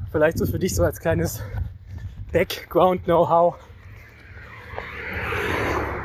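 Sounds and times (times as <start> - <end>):
speech: 0.1 - 1.5, 2.3 - 3.6
car passing: 3.6 - 6.0.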